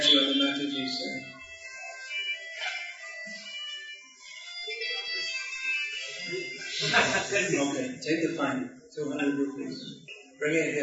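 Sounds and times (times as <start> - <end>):
cell phone ringtone with bright tinny electronic melody: 0.0 - 8.0
laughter: 6.2 - 8.0, 9.0 - 9.9
speech: 6.9 - 10.8.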